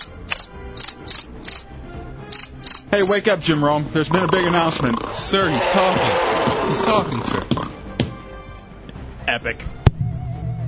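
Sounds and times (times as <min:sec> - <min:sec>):
crickets chirping at night: 0:00.0 - 0:01.7, 0:02.3 - 0:03.2
speech: 0:02.9 - 0:07.8, 0:09.3 - 0:09.8.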